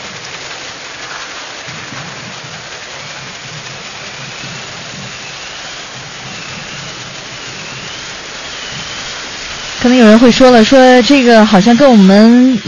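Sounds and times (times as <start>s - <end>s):
heavy rain pouring: 0.0s - 12.6s
low rumbling swells: 0.0s - 12.6s
speech: 9.8s - 12.6s.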